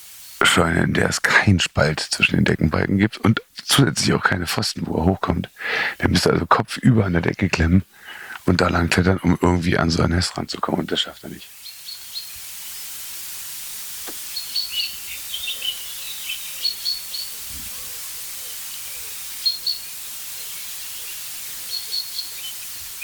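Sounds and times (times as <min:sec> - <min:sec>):
steady hiss: 0:00.0 - 0:23.0
speech: 0:00.5 - 0:11.6
agitated chaffinches calling: 0:10.8 - 0:13.0, 0:14.0 - 0:23.0.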